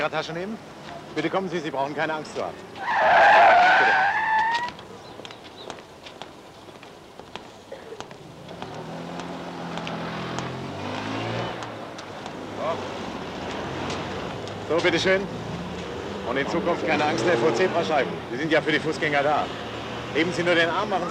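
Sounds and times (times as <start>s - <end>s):
speech: 0.0s - 4.7s, 14.7s - 15.4s, 16.3s - 21.0s
steady street traffic of many cars: 0.0s - 21.0s
sharp tire squeal: 2.8s - 4.8s.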